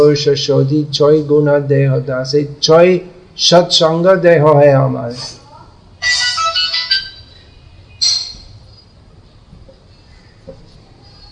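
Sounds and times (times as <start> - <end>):
speech: 0.0 - 5.4, 6.0 - 6.2
quiet hum: 0.0 - 11.3
mobile phone ringtone chiming: 6.0 - 8.5.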